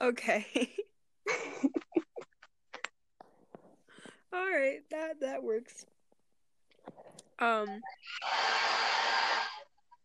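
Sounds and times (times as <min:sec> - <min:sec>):
speech: 0:00.0 - 0:01.8, 0:04.3 - 0:05.9, 0:06.8 - 0:09.6
hair dryer blowing: 0:08.2 - 0:09.7.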